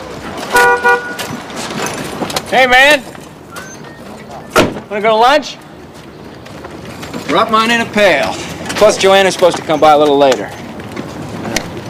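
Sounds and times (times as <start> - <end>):
low road noise: 0.0 - 11.8
car horn honking as a car drives up: 0.5 - 1.3
speech: 2.5 - 3.1, 4.9 - 5.6, 7.3 - 10.6.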